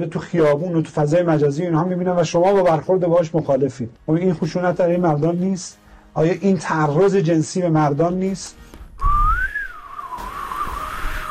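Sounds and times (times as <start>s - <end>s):
speech: 0.0s - 9.1s
person whistling a tune: 9.0s - 11.2s.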